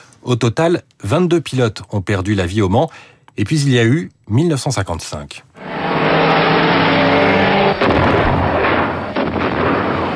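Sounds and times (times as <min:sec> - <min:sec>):
speech: 0:00.2 - 0:05.7
chaotic rumbling: 0:05.6 - 0:10.1
racing car engine roaring with rising pitch: 0:05.6 - 0:10.1
violent crashes of a Mercedes racing car beside the grandstands: 0:07.6 - 0:10.1.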